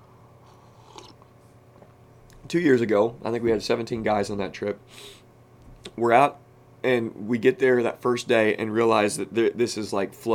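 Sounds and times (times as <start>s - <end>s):
faint hum: 0.0s - 10.3s
slurping sip of coffee: 0.4s - 1.2s
speech: 2.5s - 5.2s, 6.0s - 10.3s.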